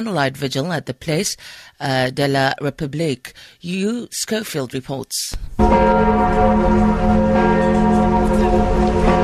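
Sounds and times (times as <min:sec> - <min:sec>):
speech: 0:00.0 - 0:08.6
large cathedral bells tolling: 0:05.6 - 0:09.2.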